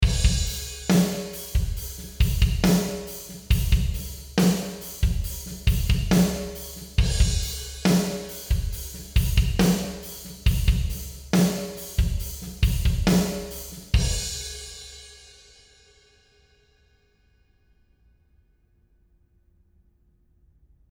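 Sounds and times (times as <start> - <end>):
drums in a warehouse: 0.0 - 16.8.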